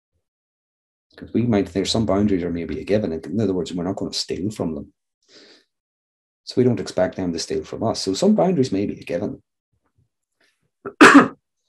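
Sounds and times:
speech: 0:01.2 - 0:05.5, 0:06.5 - 0:09.5, 0:10.8 - 0:11.3
cough: 0:10.9 - 0:11.4.

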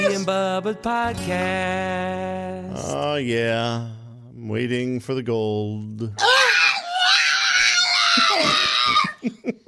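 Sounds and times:
speech: 0:00.1 - 0:06.6, 0:08.4 - 0:09.6
pug dog screaming: 0:06.2 - 0:09.2
laughter: 0:08.1 - 0:09.6.

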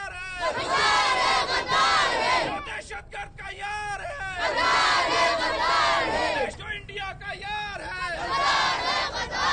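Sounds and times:
crowd of children chanting protest slogans outdoors outside the Quetta Press Club: 0:00.4 - 0:02.8, 0:04.4 - 0:06.6, 0:08.2 - 0:09.5.

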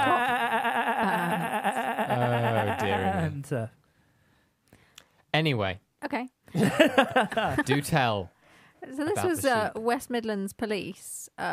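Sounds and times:
laughter: 0:00.0 - 0:03.4, 0:06.6 - 0:08.1
person imitating a sheep bleat: 0:00.0 - 0:03.4
speech: 0:03.4 - 0:03.8, 0:05.4 - 0:11.5.

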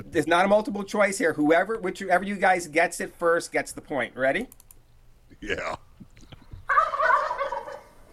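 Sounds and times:
speech: 0:00.0 - 0:04.6, 0:05.4 - 0:05.8
wild turkey gobble with rattling throaty notes: 0:06.6 - 0:08.1.

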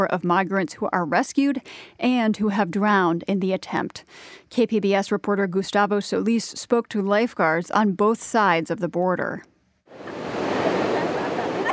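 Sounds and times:
speech: 0:00.0 - 0:10.2
ocean waves crashing on the shore: 0:09.9 - 0:11.7.

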